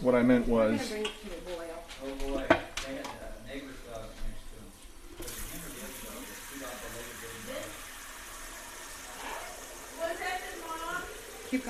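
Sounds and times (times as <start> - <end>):
speech: 0.0 - 1.4
tap pouring warm water into a pot for pasta: 5.2 - 11.6.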